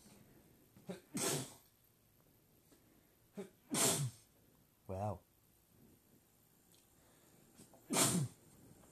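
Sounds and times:
loud explosive sneezes: 0.8 - 1.6, 3.4 - 4.3, 7.8 - 8.4.

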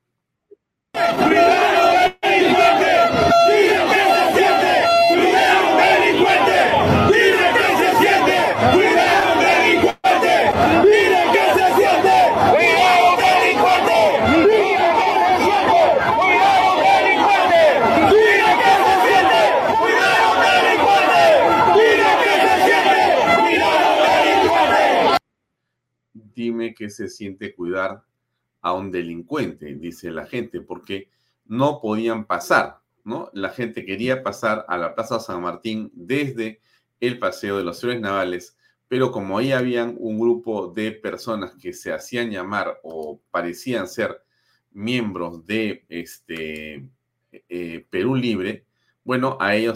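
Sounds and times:
large angry crowd shouting and chanting: 1.0 - 25.2
speech: 27.0 - 49.7.

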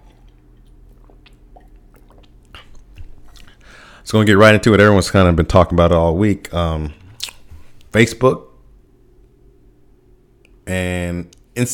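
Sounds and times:
person sipping and swallowing water: 0.0 - 3.8
speech: 4.1 - 7.0, 7.9 - 8.5, 10.7 - 11.7.

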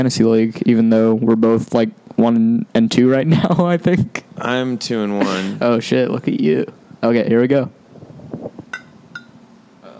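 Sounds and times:
speech: 0.0 - 7.8
glasses of root beer clinking in a toast: 8.7 - 9.4.

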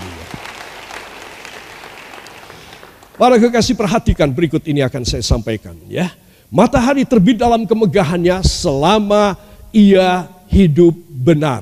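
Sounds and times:
large crowd clapping: 0.0 - 3.8
speech: 3.2 - 11.6.

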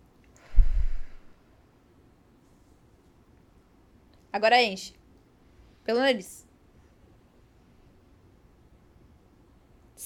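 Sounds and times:
person forcefully exhaling: 0.4 - 1.4
speech: 4.4 - 5.0, 5.9 - 6.4.

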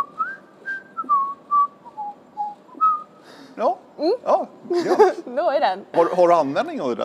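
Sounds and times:
person whistling a short melodic tune: 0.0 - 3.2
speech: 3.6 - 7.0
laughter: 4.7 - 5.4.

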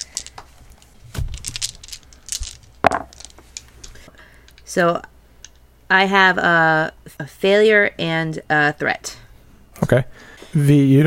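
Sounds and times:
red and purple dice clattering across a hard surface: 0.0 - 4.7
speech: 4.7 - 5.1, 5.9 - 9.2, 9.8 - 11.0.

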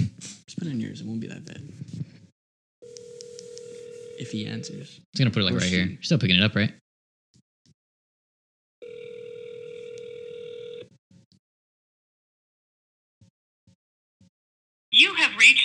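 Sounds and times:
speech: 0.6 - 2.0, 4.3 - 6.8, 15.0 - 15.6
outgoing phone call ringback tone: 2.8 - 4.8, 8.8 - 10.9.

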